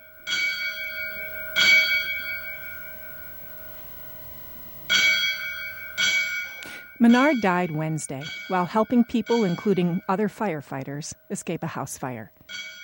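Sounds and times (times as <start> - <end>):
bell rung as a firefighter's last alarm at a funeral in a Catholic church: 0.0 - 11.6, 12.5 - 12.8
speech: 7.0 - 12.8.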